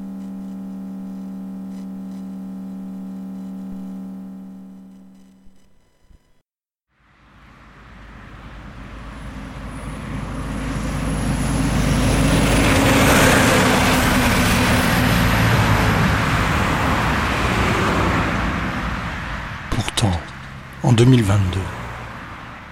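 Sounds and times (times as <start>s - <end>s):
car rushing past on a road: 7.2s - 19.7s
speech: 21.0s - 21.7s.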